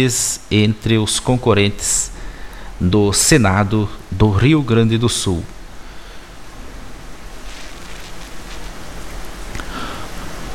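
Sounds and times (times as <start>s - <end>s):
speech: 0.0s - 2.2s, 2.8s - 5.6s
heavy rain falling on a municipality in Rio Grande do Sul: 0.0s - 10.5s
water splashing and dripping: 6.9s - 10.5s.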